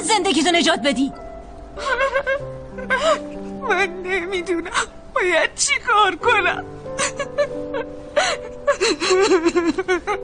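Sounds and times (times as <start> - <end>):
speech: 0.1 - 1.2, 1.8 - 10.2
woman crying and sobbing with whimpering sobs: 1.8 - 5.3, 6.1 - 10.2.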